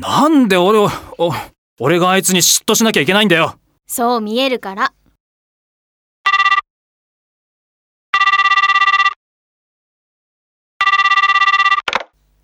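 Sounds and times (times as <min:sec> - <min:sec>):
speech: 0:00.0 - 0:05.0
phone ringback tone: 0:06.3 - 0:06.6, 0:08.2 - 0:09.2, 0:10.8 - 0:11.8.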